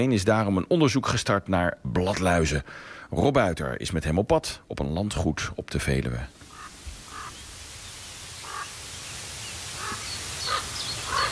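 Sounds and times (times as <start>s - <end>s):
speech: 0.0s - 6.5s
steady hiss: 0.0s - 11.3s
raven calls on an estate at the edge of the Veluwe: 6.4s - 7.4s, 8.4s - 8.8s, 9.8s - 11.3s.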